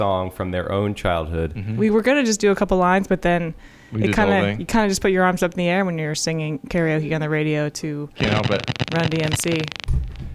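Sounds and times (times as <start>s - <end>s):
speech: 0.0s - 10.2s
telephone interference electronic pulses: 8.2s - 10.2s.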